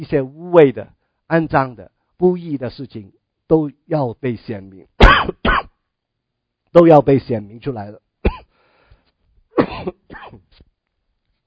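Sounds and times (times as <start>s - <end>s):
speech: 0.0s - 5.2s, 6.7s - 8.0s, 9.7s - 10.7s
person with a cold and hoarse voice coughing: 5.0s - 5.8s, 8.2s - 8.5s, 9.6s - 10.5s.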